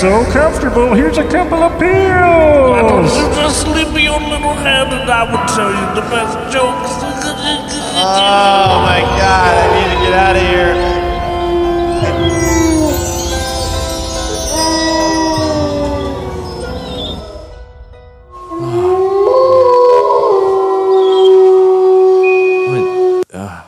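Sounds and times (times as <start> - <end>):
speech: 0.0 - 10.9
chorus of coyotes howling and yipping: 8.0 - 17.7, 18.4 - 23.2.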